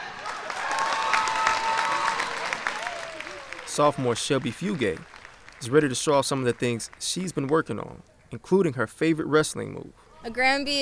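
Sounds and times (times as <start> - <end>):
packed indoor crowd clapping and cheering in a large gym: 0.0 - 8.0
speech: 3.8 - 10.8.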